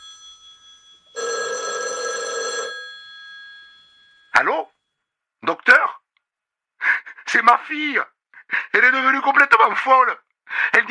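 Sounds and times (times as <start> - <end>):
telephone bell ringing: 0.0 - 4.9
speech: 4.4 - 4.7, 7.3 - 10.8.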